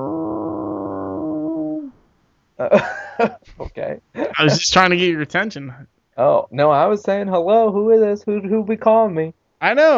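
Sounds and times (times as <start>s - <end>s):
person making a long low droning moan imitating a whale call: 0.0s - 2.0s
speech: 2.6s - 9.9s.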